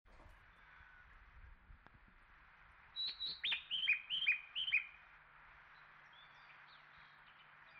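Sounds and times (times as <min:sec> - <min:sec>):
Japanese bush warbler singing: 0:03.0 - 0:05.0, 0:05.7 - 0:07.7.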